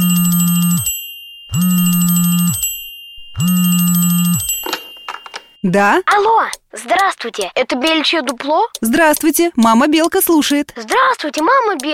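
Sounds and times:
telephone ringing: 0.0s - 5.8s
speech: 5.6s - 11.9s.

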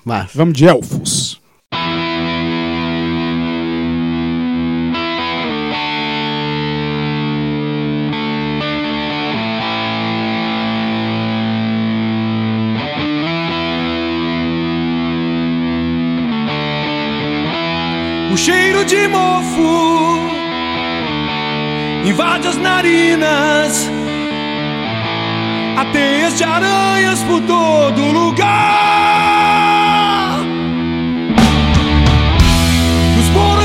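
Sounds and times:
speech: 0.0s - 1.4s, 18.4s - 20.4s, 22.0s - 24.2s, 25.8s - 29.0s
loud heavily distorted rock guitars playing power chords: 1.7s - 33.6s.

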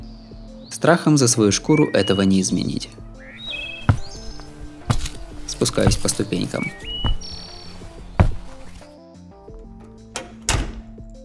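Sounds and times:
speech: 0.7s - 3.0s, 5.6s - 6.9s
door swinging shut by itself: 9.5s - 11.1s.

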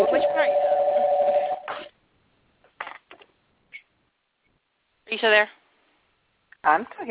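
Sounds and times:
longer steady telephone beep: 0.0s - 1.8s
speech: 5.2s - 5.6s, 6.6s - 7.0s.

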